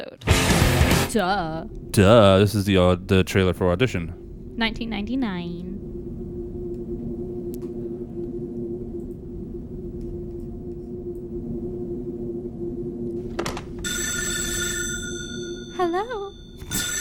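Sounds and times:
steady rumble: 0.0s - 16.9s
speech: 1.2s - 5.9s, 15.8s - 16.2s
telephone ringing with an electronic tone: 13.8s - 16.9s.

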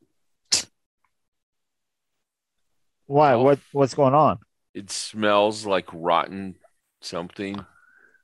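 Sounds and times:
person with a clogged nose sneezing from dust in a kitchen: 0.5s - 0.8s
speech: 3.1s - 7.7s.

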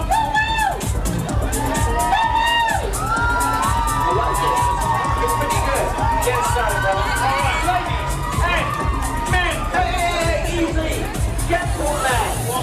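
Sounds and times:
large crowd cheering and whooping: 0.0s - 12.5s
high shrill screams and shouts: 1.6s - 10.2s.

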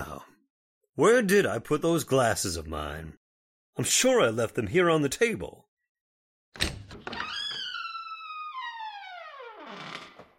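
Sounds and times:
speech: 1.0s - 3.2s, 3.8s - 5.7s
door hinges creaking: 6.6s - 10.3s.

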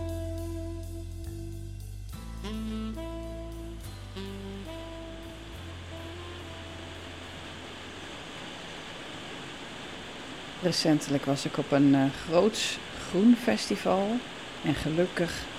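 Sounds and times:
short musical tune: 2.1s - 7.4s
heavy pouring rain: 3.7s - 15.5s
speech: 10.6s - 15.5s.

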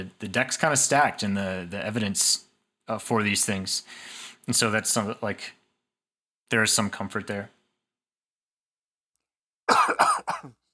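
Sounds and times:
speech: 0.0s - 5.6s, 6.5s - 7.6s
person coughing: 9.7s - 10.6s.

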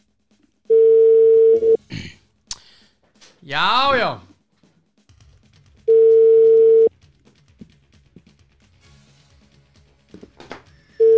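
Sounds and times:
telephone dial tone while placing a call: 0.7s - 1.8s, 5.9s - 6.9s
speech: 3.5s - 4.3s.

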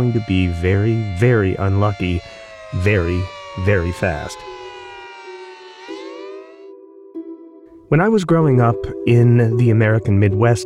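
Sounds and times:
speech: 0.0s - 4.5s, 7.9s - 10.6s
air raid siren wailing: 0.0s - 7.9s.

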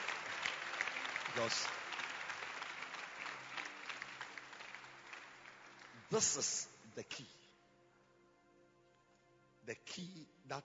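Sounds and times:
audience clapping their hands: 0.0s - 6.8s
speech: 1.4s - 1.8s, 6.1s - 7.4s, 9.7s - 10.6s.

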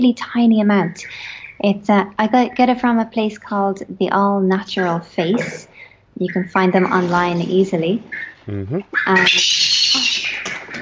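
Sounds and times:
speech: 0.0s - 9.7s
pet bird chirping loudly: 8.1s - 10.5s.

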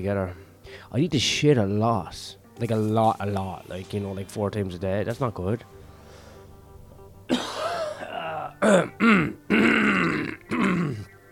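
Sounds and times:
speech: 0.0s - 5.8s, 8.6s - 9.8s
person with a flu coughing: 7.3s - 11.0s
person with a flu grunting: 7.3s - 11.0s
person with a flu clearing throat: 7.3s - 11.1s.

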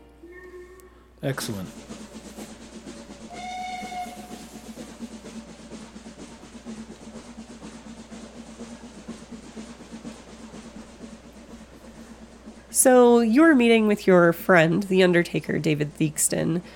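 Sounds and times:
train engine rumbling and clattering slowing into a station: 0.0s - 16.7s
train whistle blast: 0.2s - 5.3s
speech: 1.2s - 1.9s, 12.8s - 16.7s.

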